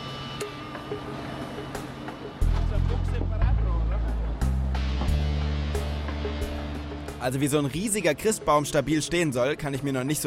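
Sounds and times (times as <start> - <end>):
large mobile crane diesel engine droning while lifting a tree: 0.0 - 7.2
speech: 7.2 - 10.2.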